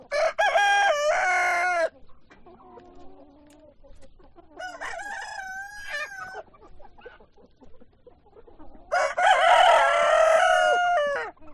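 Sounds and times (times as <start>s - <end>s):
chicken clucking at a chicken farm: 0.0s - 11.5s
rooster crowing at a chicken farm: 0.1s - 1.9s, 4.6s - 6.4s, 8.9s - 11.4s.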